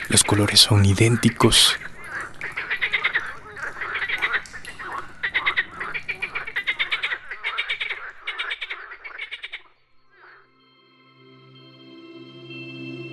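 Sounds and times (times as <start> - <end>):
frogs croaking in a chorus: 0.0 - 10.7
speech: 0.1 - 1.9.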